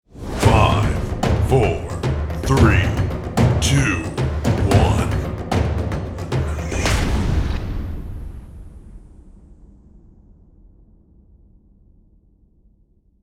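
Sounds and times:
cinematic countdown: 0.3s - 7.1s.

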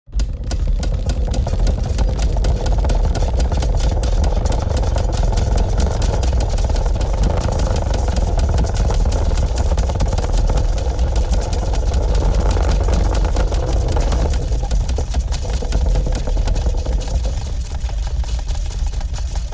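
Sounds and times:
rotating vintage steampunk mechanism: 0.2s - 19.5s.

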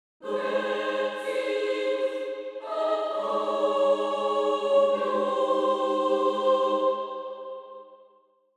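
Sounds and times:
angelic choir singing: 0.2s - 8.1s.

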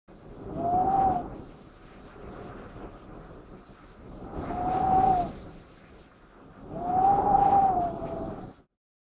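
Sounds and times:
wind howling and whistling through window: 0.1s - 8.8s.

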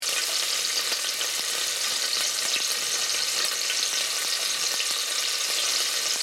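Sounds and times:
hot oil sizzling in cooking: 0.0s - 6.2s.

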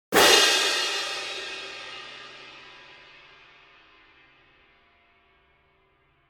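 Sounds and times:
long cymbal crash: 0.1s - 5.0s.

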